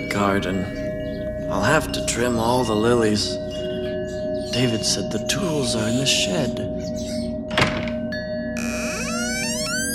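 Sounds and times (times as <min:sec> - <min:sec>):
speech: 0:00.1 - 0:00.8, 0:01.5 - 0:03.5, 0:04.5 - 0:07.2
door latch thunk: 0:07.5 - 0:08.0
creaking door hinges: 0:07.5 - 0:09.9.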